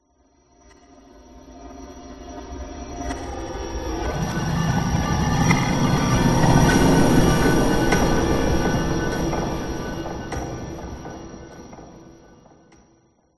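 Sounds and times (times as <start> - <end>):
rising ominous sound: 3.2 - 12.8.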